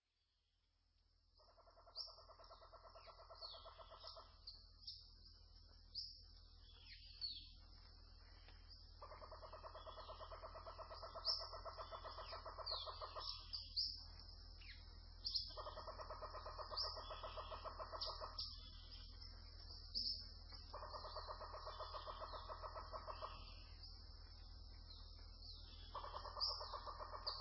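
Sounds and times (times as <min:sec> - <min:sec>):
rainforest ambience: 0:00.0 - 0:27.4.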